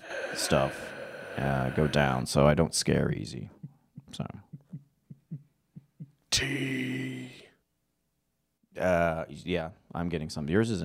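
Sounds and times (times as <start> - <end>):
speech: 0.4 - 4.5, 6.4 - 7.4, 8.8 - 10.8
low lub-dub heartbeat thumps: 3.5 - 6.3.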